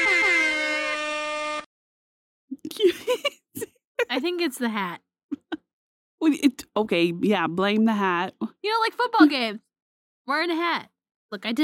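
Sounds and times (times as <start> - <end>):
air horn blast: 0.0 - 1.7
speech: 4.2 - 5.0, 6.2 - 9.7, 10.3 - 11.6.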